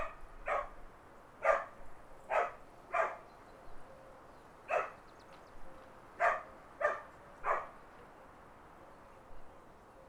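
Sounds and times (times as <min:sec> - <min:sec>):
country dogs barking: 0:00.0 - 0:00.7, 0:01.4 - 0:01.7, 0:02.3 - 0:03.2, 0:04.7 - 0:05.0, 0:06.2 - 0:07.7.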